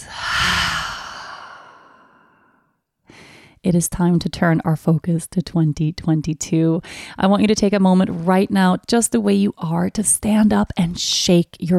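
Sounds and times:
deep slow exhale through the open mouth: 0.0 - 2.6
faint breath noise: 0.0 - 3.6
speech: 3.6 - 11.7.

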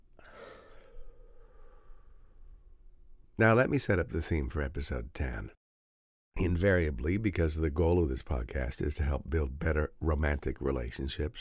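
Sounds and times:
deep breath in and out: 0.2 - 2.8
speech: 3.4 - 5.6, 6.4 - 11.3.

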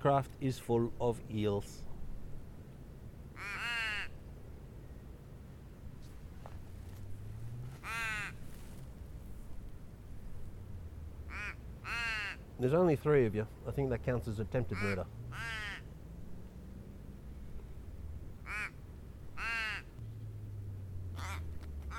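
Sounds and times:
speech: 0.0 - 1.9, 12.6 - 15.3
low steady rumble: 0.0 - 21.9
crows cawing in a Casuarina tree: 3.4 - 4.2, 7.8 - 8.4, 11.3 - 12.5, 14.7 - 15.9, 18.4 - 18.8, 19.4 - 20.0, 21.2 - 21.9.

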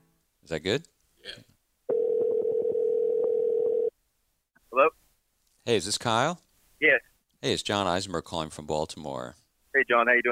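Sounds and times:
speech: 0.4 - 1.6, 4.7 - 5.0, 5.6 - 10.3
telephone dial tone at the start of a phone call: 1.9 - 3.9.

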